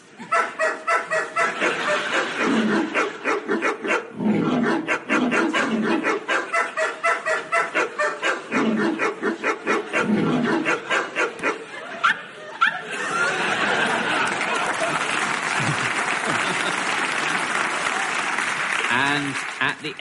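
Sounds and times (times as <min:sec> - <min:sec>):
laughter: 0:00.2 - 0:03.7, 0:05.3 - 0:08.3, 0:09.8 - 0:19.8
dogs yelping at different pitches on a dog piano: 0:00.2 - 0:12.9.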